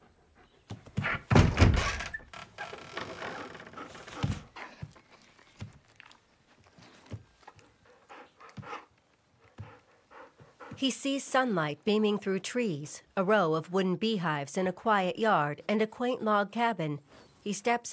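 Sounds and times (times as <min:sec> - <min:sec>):
wooden shed door swinging open with a heavy wooden thunk: 0:01.0 - 0:03.8
speech: 0:10.8 - 0:17.9.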